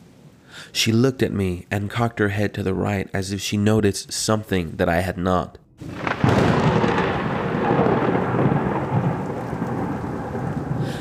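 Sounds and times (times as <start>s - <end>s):
speech: 0.6s - 6.1s
thunder crack and rumble from a lightning strike: 5.7s - 11.0s
steady rain hissing: 5.8s - 11.0s.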